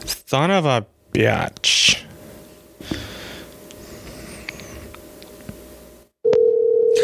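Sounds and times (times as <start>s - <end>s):
speech: 0.3s - 2.0s
crackly hissing phone line: 1.6s - 6.1s
loud steady telephone dial tone on unanswered call: 6.2s - 7.0s.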